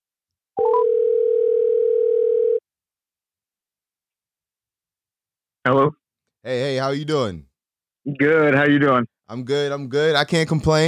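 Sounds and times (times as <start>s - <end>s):
telephone dial tone while placing a call: 0.6s - 2.6s
speech: 5.7s - 10.8s.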